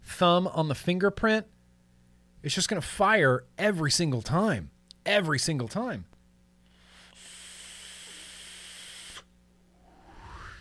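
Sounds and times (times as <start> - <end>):
speech: 0.2 - 1.6, 2.4 - 6.1
air drawn through a vape with its coil hissing: 6.7 - 9.3
faint rising whoosh: 9.7 - 10.5.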